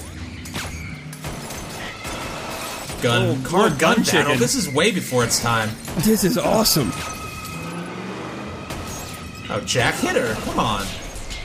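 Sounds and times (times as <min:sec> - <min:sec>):
car engine roaring during a car chase: 0:02.3 - 0:11.4
speech: 0:03.0 - 0:07.2, 0:09.6 - 0:11.0.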